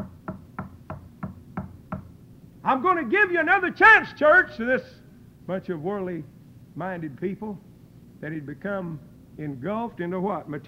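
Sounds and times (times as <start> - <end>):
knocking on a door: 0.0 - 2.1
speech: 2.6 - 10.6.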